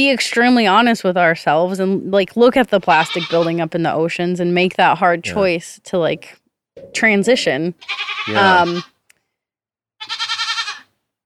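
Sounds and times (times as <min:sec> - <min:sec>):
speech: 0:00.0 - 0:08.9
goat bleating: 0:02.9 - 0:03.7, 0:07.5 - 0:09.0, 0:10.0 - 0:10.9.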